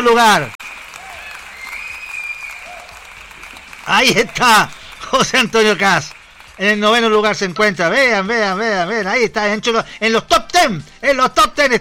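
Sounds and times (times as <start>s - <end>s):
speech: 0.0s - 0.6s, 3.9s - 11.7s
audience on a show applauding: 0.2s - 7.1s.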